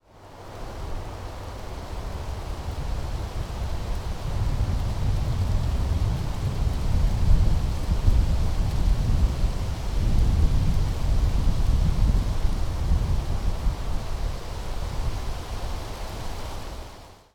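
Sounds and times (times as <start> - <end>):
wind in the trees by the Merced in Yosemite Valley in spring: 0.0 - 17.3.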